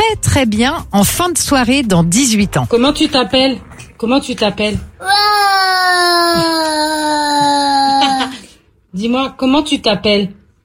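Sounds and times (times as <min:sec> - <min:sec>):
speech: 0:00.1 - 0:10.6
toddler of about one and a half years wailing: 0:05.0 - 0:08.4.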